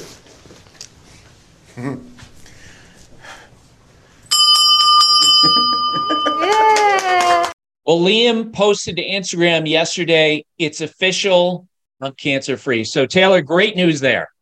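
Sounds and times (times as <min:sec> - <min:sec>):
speech: 0:01.8 - 0:02.1, 0:07.9 - 0:14.3
hand bell rung by a patient finishing cancer treatment: 0:04.3 - 0:06.9.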